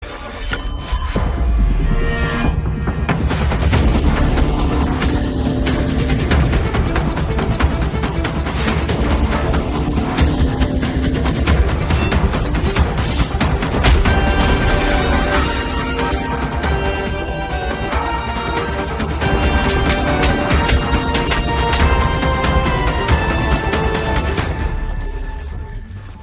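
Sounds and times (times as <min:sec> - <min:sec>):
trailer background music ringtone: 0:00.0 - 0:26.2.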